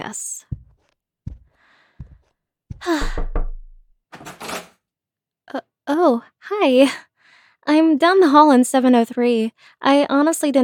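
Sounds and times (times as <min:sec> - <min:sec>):
dull knocks on a hotel room door: 0:01.3 - 0:03.8
speech: 0:05.5 - 0:07.1, 0:07.7 - 0:10.6.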